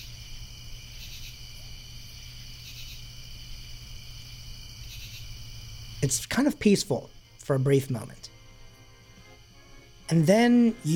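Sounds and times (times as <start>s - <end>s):
crickets chirping at night: 0.0s - 10.9s
speech: 6.0s - 8.4s, 10.1s - 10.9s.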